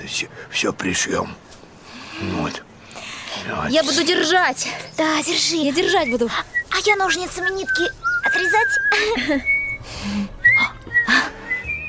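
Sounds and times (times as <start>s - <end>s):
speech: 0.0s - 1.6s, 2.2s - 2.7s, 3.4s - 10.3s
person whistling a song: 7.4s - 9.8s, 10.4s - 11.8s.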